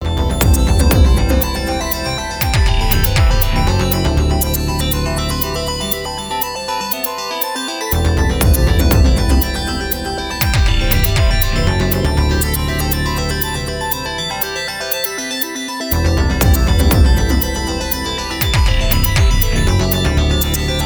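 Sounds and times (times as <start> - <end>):
quirky pretty synth arpeggios: 0.0 - 20.8
hard kick drums: 0.2 - 4.0, 8.3 - 9.6, 10.4 - 12.0, 16.3 - 20.6.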